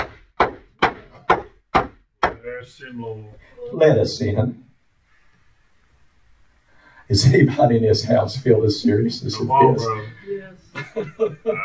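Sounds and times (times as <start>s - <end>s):
heavy pounding on a wooden door: 0.0s - 2.4s
speech: 2.5s - 4.7s, 7.1s - 11.6s
laughter: 8.7s - 11.6s.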